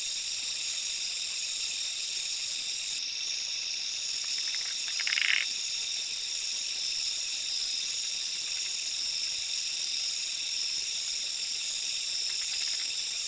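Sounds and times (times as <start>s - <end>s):
high-pitched insect chorus: 0.0s - 13.2s
Zoque treefrog Quilticohyla zoque call: 4.1s - 5.7s, 12.3s - 13.0s.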